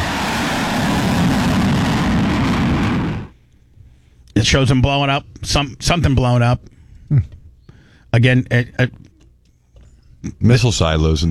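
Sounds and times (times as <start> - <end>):
fighter jet roaring with its afterburners on: 0.0 - 3.3
speech: 4.4 - 7.4, 8.1 - 9.0, 10.2 - 11.3.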